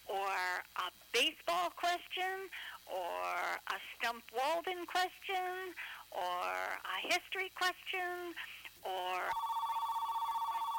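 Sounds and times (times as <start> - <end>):
speech: 0.3 - 9.5
quiet electronic telephone ring with incoming call: 9.3 - 10.7.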